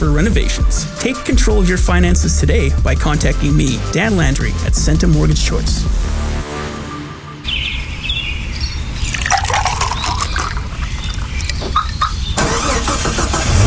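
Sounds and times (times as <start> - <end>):
speech: 0.0 - 6.2
higher chirps and rattles: 8.5 - 12.5
car engine started with a car starter: 11.6 - 13.6.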